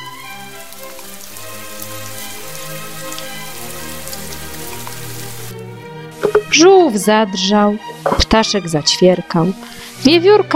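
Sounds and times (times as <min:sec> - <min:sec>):
steady rain pattering on a surface: 0:00.0 - 0:05.6
speech: 0:06.6 - 0:10.5.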